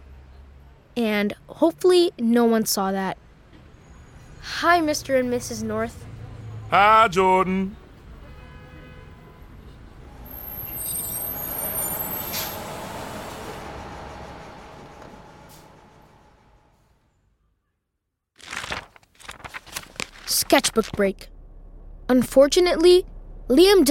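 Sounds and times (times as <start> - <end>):
speech: 1.0 - 3.2, 4.4 - 6.0, 6.7 - 7.8, 20.6 - 21.4, 22.1 - 23.8
school bus engine rumbling: 3.2 - 8.3, 9.1 - 17.0, 20.1 - 23.8
school bus air brake hiss: 10.1 - 16.7.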